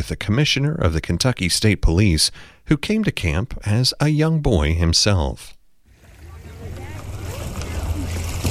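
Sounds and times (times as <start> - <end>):
speech: 0.0 - 5.6
lake water gently lapping at an island shore: 5.8 - 8.4
faint indistinct murmuring voices: 6.0 - 8.4.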